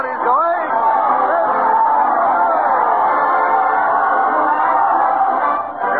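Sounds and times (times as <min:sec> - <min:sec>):
large crowd cheering at a parade: 0:00.0 - 0:05.9.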